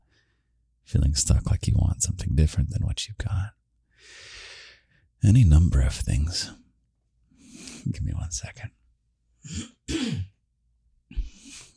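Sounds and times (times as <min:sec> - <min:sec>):
speech: 0:00.9 - 0:04.2, 0:05.2 - 0:06.6, 0:07.8 - 0:08.8, 0:09.4 - 0:10.3
person coughing throatily: 0:09.4 - 0:10.4.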